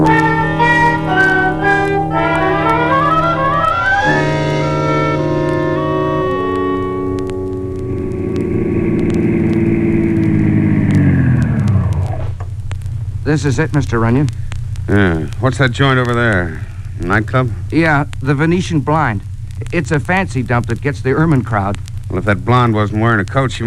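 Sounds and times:
old jalopy engine droning: 0.0s - 18.3s
speech: 13.4s - 23.6s.

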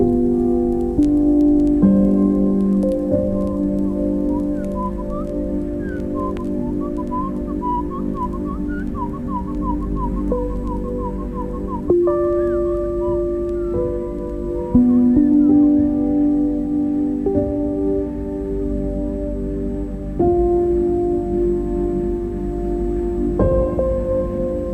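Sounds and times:
steady low humming tones: 0.0s - 24.7s
Winter Wren song slowed to quarter speed: 1.1s - 18.0s.

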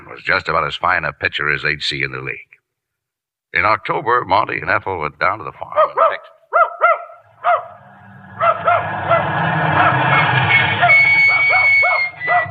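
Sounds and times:
speech: 0.2s - 2.5s, 3.5s - 6.1s
dog barking: 5.8s - 7.8s, 8.4s - 10.0s, 10.8s - 12.4s
steady rumbling noise: 7.2s - 12.4s
faint high whine: 7.3s - 12.4s.

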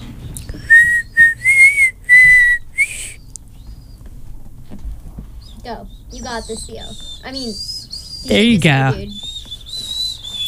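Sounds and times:
person whistling a birthday tune: 0.6s - 3.2s, 9.0s - 10.4s
speech: 5.7s - 9.2s.

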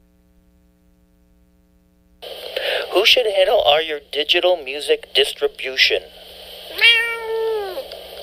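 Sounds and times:
speech: 3.0s - 6.2s
cat meowing: 6.7s - 7.8s.

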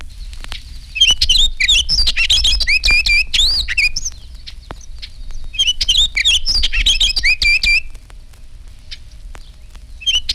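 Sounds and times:
orchard oriole warbling in open country with scattered trees: 1.0s - 8.0s, 10.0s - 10.3s.

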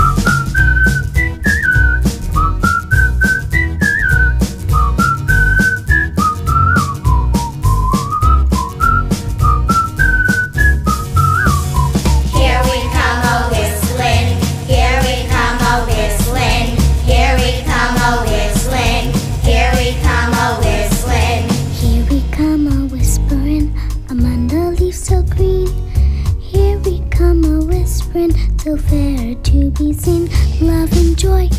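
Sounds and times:
person whistling a bright lilting carol melody: 0.0s - 13.5s
steady instrumental backing music: 0.0s - 31.5s.

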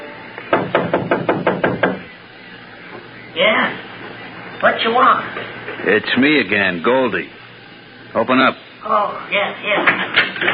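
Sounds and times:
firm knocking on a door: 0.5s - 2.1s
speech: 4.8s - 7.4s, 8.1s - 10.5s.

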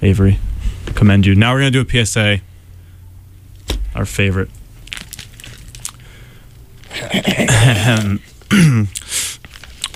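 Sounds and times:
speech: 0.0s - 2.5s, 4.0s - 4.6s, 7.1s - 9.0s
faint throat clearing: 6.9s - 9.0s
person acting out throaty coughs: 6.9s - 9.0s.

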